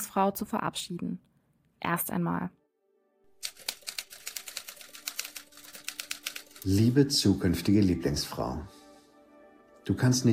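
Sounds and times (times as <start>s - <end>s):
speech: 0.1s - 2.6s, 6.6s - 8.8s, 9.9s - 10.3s
mechanical typewriter keystrokes clattering: 3.4s - 6.7s.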